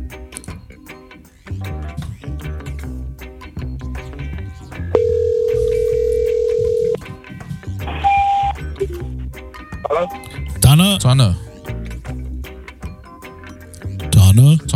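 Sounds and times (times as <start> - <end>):
busy music: 0.0 - 14.7
outgoing phone ringback tone: 5.0 - 7.0, 8.0 - 8.5
speech: 10.0 - 11.5.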